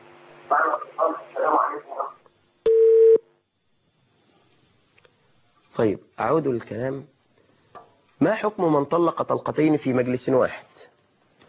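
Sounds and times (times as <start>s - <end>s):
speech: 0.5s - 2.2s, 5.7s - 7.1s, 8.2s - 11.0s
steady telephone tone announcing an incoming call: 2.7s - 3.2s.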